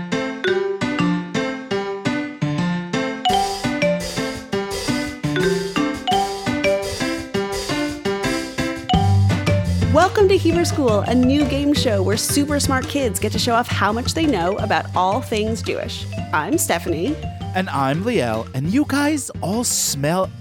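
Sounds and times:
bouncy game show theme jingle with chiming bell-like notes: 0.2s - 1.6s, 3.1s - 12.8s, 13.8s - 18.8s
speech: 10.4s - 20.4s.

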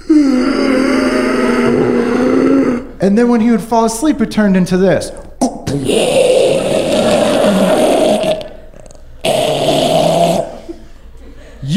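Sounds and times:
voice imitating a man's heavy breathing with a low droning groan: 0.0s - 3.0s, 5.2s - 10.8s
speech: 3.0s - 6.4s.

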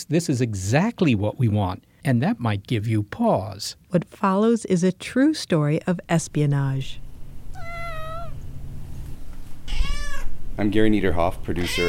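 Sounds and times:
speech: 0.0s - 7.0s, 10.6s - 11.8s
low indoor hum: 0.0s - 11.8s
cat meowing: 7.5s - 8.4s, 9.6s - 10.4s, 11.6s - 11.8s.

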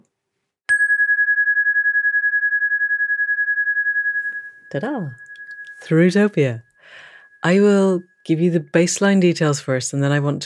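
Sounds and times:
single bright chime with a steady shimmering tone: 0.7s - 8.5s
speech: 4.7s - 10.4s.

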